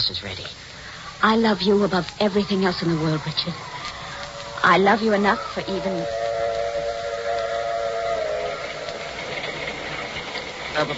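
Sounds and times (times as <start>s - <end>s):
speech: 0.0s - 3.8s, 4.6s - 6.2s, 10.8s - 10.9s
hissing rumbling rail background: 0.0s - 10.9s
steam train whistle blowing: 3.7s - 10.9s.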